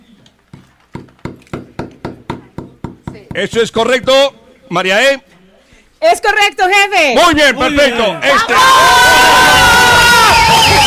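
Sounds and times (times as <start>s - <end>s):
hammer driving a nail: 0.5s - 3.6s
speech: 3.4s - 5.3s, 6.0s - 9.7s.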